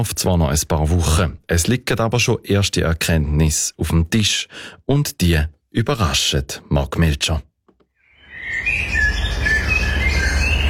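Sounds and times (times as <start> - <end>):
speech: 0.0 - 7.5
blackbirds singing at evening dusk near Trun: 8.0 - 10.6.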